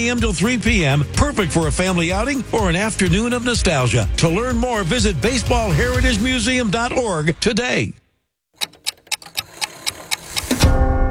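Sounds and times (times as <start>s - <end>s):
speech: 0.0s - 8.0s
clock ticking: 8.6s - 10.7s.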